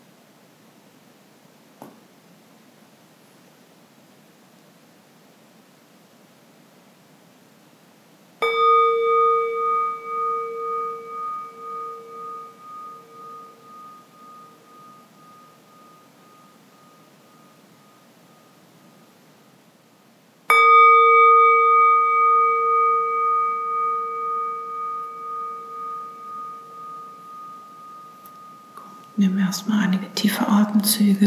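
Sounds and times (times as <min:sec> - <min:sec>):
gong struck during a guided relaxation: 0:08.4 - 0:18.5, 0:20.5 - 0:30.3
speech: 0:29.2 - 0:31.2.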